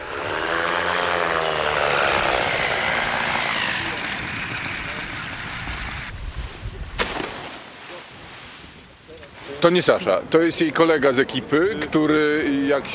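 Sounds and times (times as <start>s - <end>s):
motorized hang glider propeller engine droning: 0.0s - 6.1s
wind noise: 2.1s - 7.5s
sharp crack: 6.9s - 7.7s
speech: 9.6s - 12.9s.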